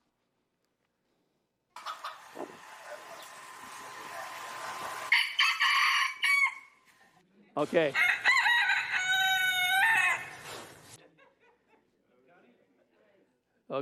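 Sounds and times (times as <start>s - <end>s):
rooster crowing: 4.8s - 6.8s, 7.9s - 10.4s
speech: 7.6s - 8.1s
laughter: 11.0s - 12.0s.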